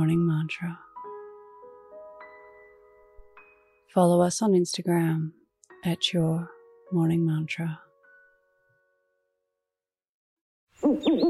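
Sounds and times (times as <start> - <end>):
speech: 0.0 - 0.9, 3.9 - 7.8, 10.8 - 11.2
owl hooting: 10.8 - 11.2.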